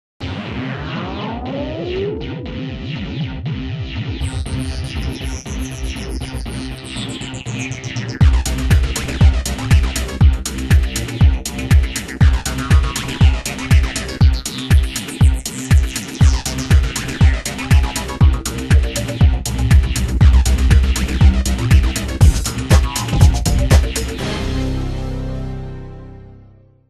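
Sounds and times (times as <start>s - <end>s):
90s techno ringtone: 4.2s - 15.4s, 16.2s - 24.2s.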